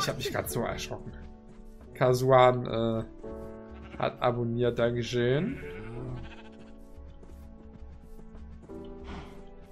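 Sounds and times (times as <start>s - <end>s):
speech: 0.0s - 1.2s, 2.0s - 6.3s
continuous video game sound: 0.0s - 9.7s
sheep bleating in a video game: 3.6s - 4.5s, 5.1s - 7.1s.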